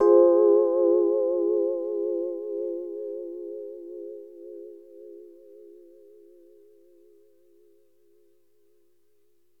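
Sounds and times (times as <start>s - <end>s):
Rhodes FM electric piano: 0.0s - 5.4s.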